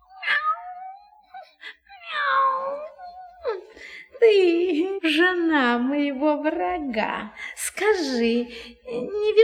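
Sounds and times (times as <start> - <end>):
cat meowing: 0.0 - 1.4, 2.0 - 3.2
speech: 4.2 - 9.4.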